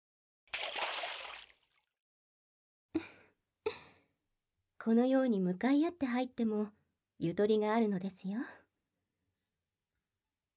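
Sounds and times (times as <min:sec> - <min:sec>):
water sloshing in a warm in-room bathtub as two people get in: 0:00.5 - 0:01.9
speech: 0:04.8 - 0:08.6.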